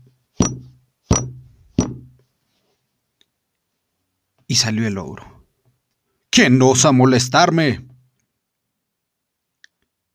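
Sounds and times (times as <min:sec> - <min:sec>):
loud knocking on a door: 0:00.4 - 0:02.2
speech: 0:04.5 - 0:05.4, 0:06.4 - 0:07.9.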